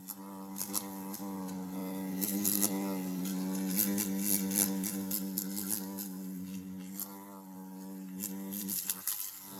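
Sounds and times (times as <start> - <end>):
fly buzzing: 0.0 - 9.5.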